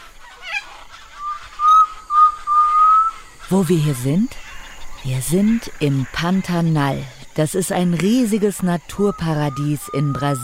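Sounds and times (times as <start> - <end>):
tinamou whistling call in the Pantanal Brazil: 1.2 - 3.2, 9.0 - 10.4
speech: 3.5 - 4.4, 5.0 - 10.4.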